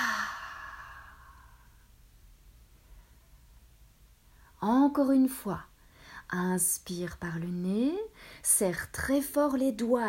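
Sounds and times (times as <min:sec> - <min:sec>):
forceful exhale releasing tension after a relaxation exercise: 0:00.0 - 0:01.9
speech: 0:04.6 - 0:05.7, 0:06.3 - 0:10.0.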